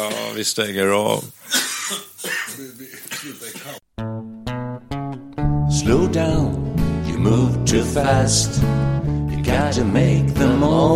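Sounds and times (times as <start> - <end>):
person coughing: 0.0 - 0.4, 1.5 - 3.8
speech: 0.0 - 2.0, 5.8 - 6.6, 7.2 - 10.9.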